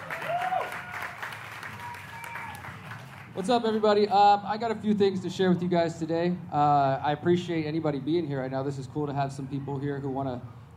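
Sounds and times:
crowd whoops: 0.0s - 2.8s
audience applause at a live event: 0.0s - 3.4s
speech: 3.4s - 10.7s.

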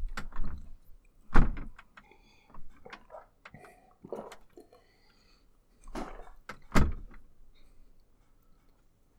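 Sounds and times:
door knocks and creaks: 0.2s - 0.7s, 1.3s - 1.8s, 6.5s - 7.2s
door rattling and scraping as it opens: 1.3s - 1.8s, 6.5s - 7.2s.

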